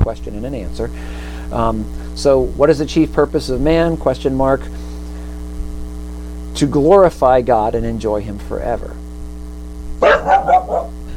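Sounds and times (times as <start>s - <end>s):
speech: 0.0s - 4.8s, 6.6s - 9.0s
steady low electrical hum: 0.0s - 11.1s
dog barking: 10.0s - 11.0s.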